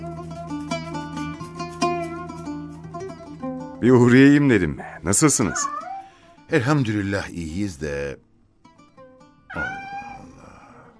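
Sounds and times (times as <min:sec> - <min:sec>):
speech: 0:03.8 - 0:05.8, 0:06.5 - 0:08.3, 0:09.5 - 0:09.8
household cat chirping: 0:05.4 - 0:06.2, 0:09.5 - 0:10.3
household cat meowing at a neighbour's house: 0:05.4 - 0:06.2, 0:09.5 - 0:10.9.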